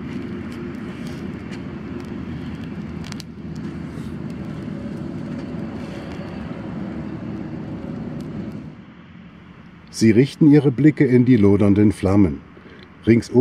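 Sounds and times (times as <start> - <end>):
cars rushing past on a nearby highway: 0.0 - 11.0
traffic rumble from a nearby highway: 0.0 - 13.3
speech: 10.0 - 13.3.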